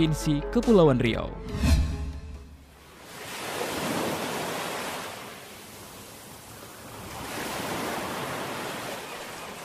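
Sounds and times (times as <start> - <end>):
speech: 0.0 - 1.9
sea waves washing in rolling surges: 2.6 - 9.6.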